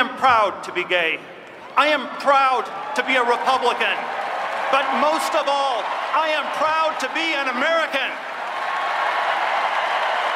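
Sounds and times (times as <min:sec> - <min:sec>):
speech: 0:00.2 - 0:08.3
large convention crowd applauding and cheering: 0:02.5 - 0:10.3.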